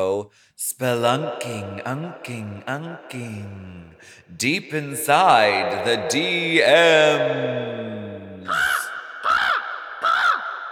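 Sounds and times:
speech: 0.1s - 8.8s
crow-like bird cawing harshly: 8.5s - 10.7s.

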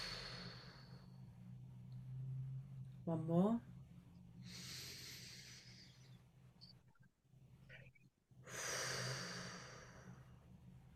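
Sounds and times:
deep breaths in through nose and out through mouth: 0.0s - 1.3s, 4.4s - 6.2s, 8.4s - 10.5s
low hum: 0.0s - 10.9s
speech: 3.1s - 3.7s.

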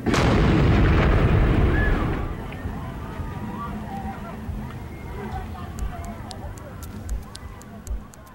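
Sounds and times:
homemade pipe bomb with nails and screws exploding among a concert crowd: 0.0s - 2.6s
agitated concert crowd noise: 1.2s - 8.3s
scattered voices: 1.7s - 8.3s.

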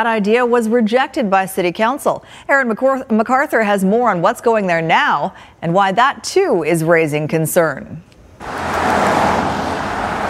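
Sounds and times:
speech: 0.0s - 9.0s
heavy rush hour road traffic: 8.4s - 10.2s.

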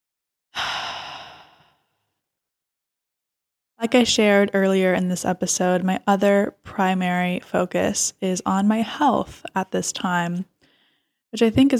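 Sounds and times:
deep breath released as an airy sigh: 0.6s - 2.0s
speech: 3.8s - 10.5s, 11.3s - 11.7s.

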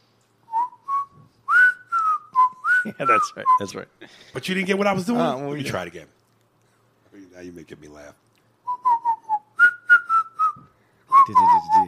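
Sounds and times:
person whistling a TV theme tune: 0.5s - 3.7s, 8.7s - 11.8s
speech: 2.8s - 6.2s, 7.4s - 8.2s, 11.3s - 11.8s.

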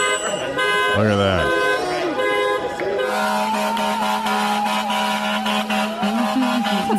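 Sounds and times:
vehicle horns honking: 0.0s - 6.9s
speech: 1.0s - 1.6s.

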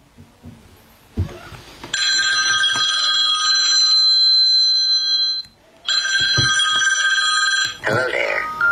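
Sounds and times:
old-style telephone bell ringing: 2.0s - 8.7s.

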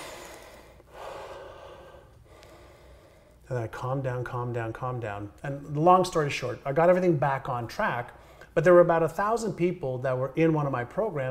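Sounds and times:
deep breath taken to calm down from a stressed state: 0.0s - 3.4s, 8.2s - 8.6s
speech: 3.5s - 11.2s.

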